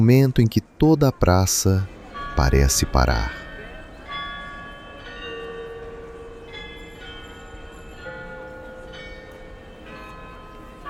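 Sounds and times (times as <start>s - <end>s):
speech: 0.0s - 3.4s
carillon bells ringing: 2.0s - 10.8s.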